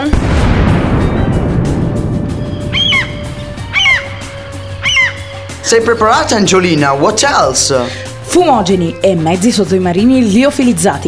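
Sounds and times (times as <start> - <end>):
deep rumbling cannon blast: 0.0 - 4.8
seagulls squawking harshly: 2.6 - 5.6
speech: 5.7 - 11.0.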